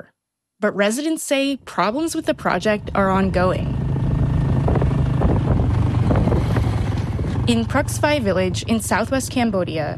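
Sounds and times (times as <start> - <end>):
speech: 0.0 - 3.8, 7.5 - 9.9
small motorbike engine droning on a ride to farmland in southwest Cambodia: 2.3 - 9.9
heavy wind rush buffeting the microphone: 2.8 - 8.6.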